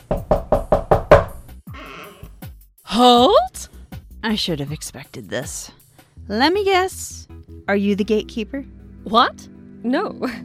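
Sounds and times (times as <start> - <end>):
firm knocks on a door: 0.0 - 1.6
speech: 3.0 - 3.5, 4.2 - 10.4.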